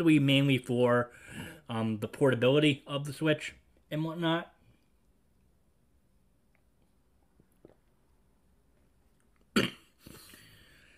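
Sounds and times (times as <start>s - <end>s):
speech: 0.0s - 4.6s
person sipping coffee: 6.4s - 10.9s.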